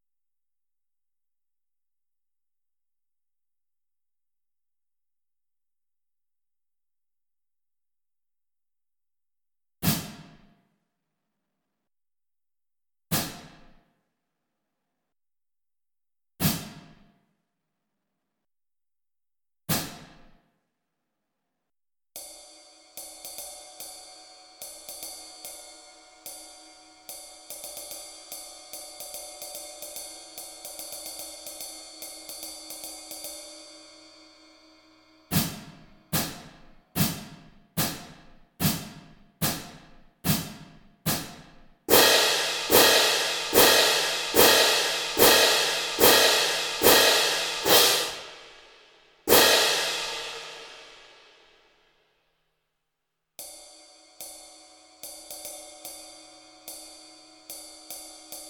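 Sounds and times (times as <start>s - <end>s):
drumline cymbals: 22.2s - 51.4s, 53.4s - 58.4s.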